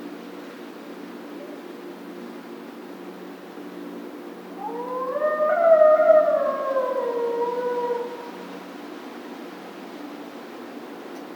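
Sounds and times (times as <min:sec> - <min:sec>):
coyote howling: 0:04.5 - 0:08.6.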